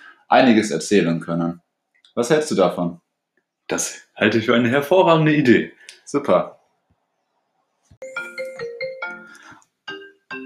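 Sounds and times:
speech: 0:00.3 - 0:01.6, 0:02.2 - 0:03.0, 0:03.7 - 0:06.6
telephone ringing with a bright electronic melodic tone: 0:08.0 - 0:10.4.

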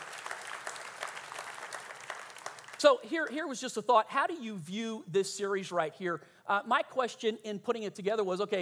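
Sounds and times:
audience applauding: 0:00.0 - 0:02.9
speech: 0:02.8 - 0:08.6.

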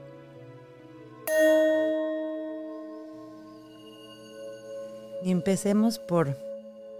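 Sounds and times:
meditation bell struck to begin a meditation: 0:01.3 - 0:05.3
speech: 0:05.2 - 0:06.5.

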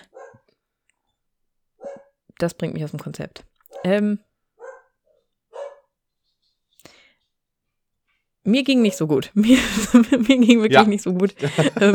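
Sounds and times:
dog barking: 0:00.0 - 0:00.5, 0:01.8 - 0:02.2, 0:03.7 - 0:04.0, 0:04.6 - 0:06.0
speech: 0:02.4 - 0:04.3, 0:08.5 - 0:11.9
laughter: 0:09.4 - 0:11.9.

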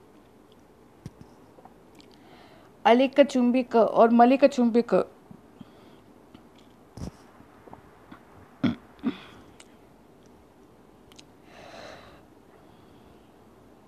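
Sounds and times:
speech: 0:02.8 - 0:05.1
person burping: 0:08.6 - 0:09.4.

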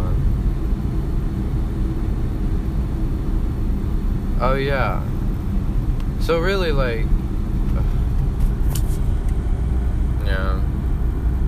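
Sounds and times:
car engine and tyre rumble on a road: 0:00.0 - 0:11.4
speech: 0:04.4 - 0:05.2, 0:06.2 - 0:07.2.

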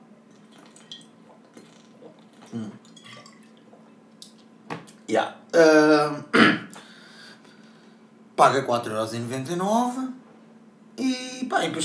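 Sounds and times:
water pouring: 0:00.3 - 0:03.7
sipping and gulping swallows of water: 0:00.3 - 0:04.5
speech: 0:02.5 - 0:02.9, 0:05.1 - 0:06.5, 0:08.4 - 0:10.2, 0:11.0 - 0:11.8.

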